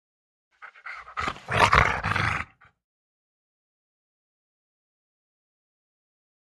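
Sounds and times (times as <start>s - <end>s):
Rottweiler growling and snarling: 0.6s - 2.7s.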